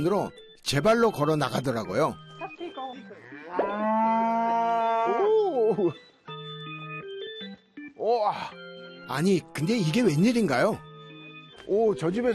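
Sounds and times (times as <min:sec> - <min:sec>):
speech: 0:00.0 - 0:02.3, 0:05.7 - 0:06.1, 0:08.0 - 0:10.9, 0:11.6 - 0:12.3
dairy cow mooing: 0:03.1 - 0:05.3.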